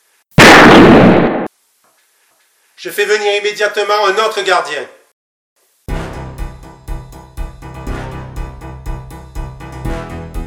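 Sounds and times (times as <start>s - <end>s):
gunshot fired by an officer: 0.4s - 1.5s
speech: 2.8s - 5.0s.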